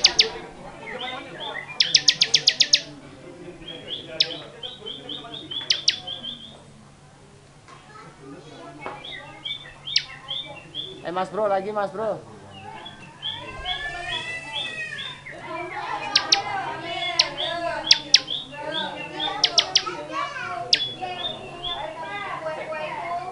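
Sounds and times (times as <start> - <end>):
Bar-winged prinia song in the ngebren style: 0.0 - 3.0, 3.6 - 6.6, 9.0 - 11.2, 12.5 - 22.5
birds chirping: 0.0 - 7.0, 8.5 - 23.3
speech: 11.2 - 12.3.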